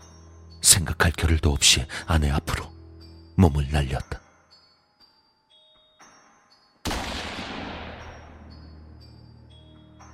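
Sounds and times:
speech: 0.6 - 2.7, 3.4 - 4.2
deafening gunshot: 6.9 - 8.6.

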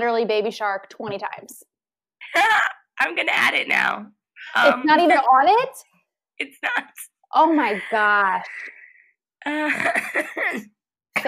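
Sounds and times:
speech: 0.0 - 1.7, 2.3 - 8.8, 9.4 - 11.2
person coughing: 9.4 - 11.2.

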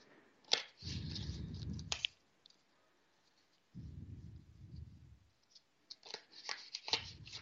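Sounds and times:
deck of tarot cards being shuffled: 0.5 - 2.2, 5.4 - 7.4.

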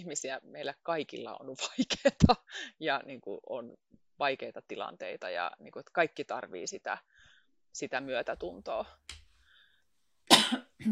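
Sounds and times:
speech: 0.0 - 9.2, 10.4 - 10.9
harsh coughing: 10.3 - 10.9.

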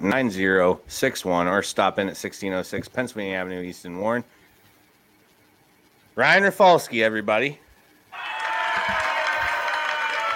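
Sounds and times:
speech: 0.0 - 4.4, 6.2 - 7.6
recorded crowd applause and cheering played from a phone soundboard: 8.1 - 10.3.

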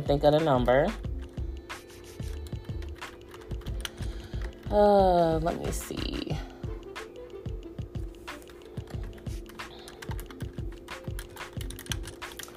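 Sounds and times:
speech: 0.0 - 1.1, 4.7 - 6.5
rapid uneven keystrokes on a computer keyboard: 2.2 - 4.8, 8.4 - 12.5.

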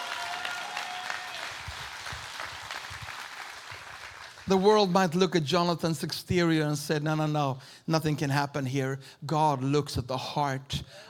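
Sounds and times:
church congregation applauding during a sermon: 0.0 - 5.0
speech: 4.5 - 11.0.

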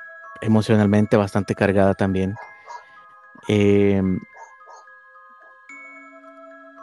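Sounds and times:
speech: 0.4 - 2.5, 3.4 - 4.3
dogs barking: 2.2 - 3.0, 4.1 - 4.9.

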